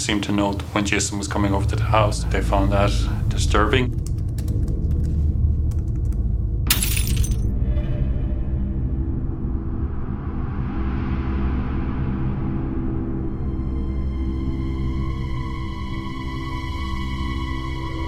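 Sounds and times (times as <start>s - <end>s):
speech: 0.0s - 4.1s
steady low rumble of noise: 0.0s - 18.0s
glass breaking and shattering into tinkling shards: 6.7s - 7.5s.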